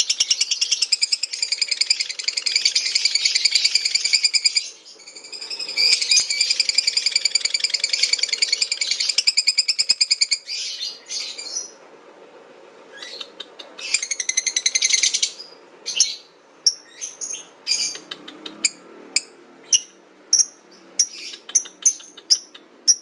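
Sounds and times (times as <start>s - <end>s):
lutino lovebird giving the ngekek chattering call: 0.0s - 11.8s, 13.0s - 23.0s.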